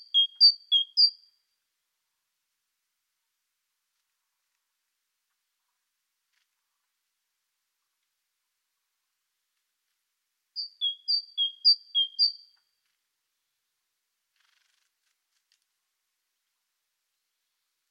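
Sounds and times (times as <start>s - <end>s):
great tit Parus major calling: 0.0s - 1.2s, 10.6s - 12.5s.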